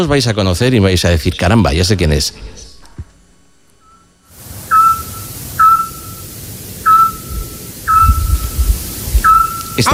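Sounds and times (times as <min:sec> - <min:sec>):
speech: 0:00.0 - 0:02.6, 0:09.8 - 0:09.9
soft hiss: 0:00.0 - 0:09.9
scops owl giving mellow whistled hoots at night in Peñaranda de Duero Spain: 0:03.8 - 0:09.9.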